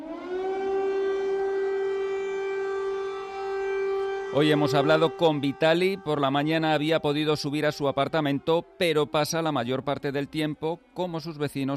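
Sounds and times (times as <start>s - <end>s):
air raid siren wailing: 0.0s - 11.2s
speech: 4.3s - 11.7s.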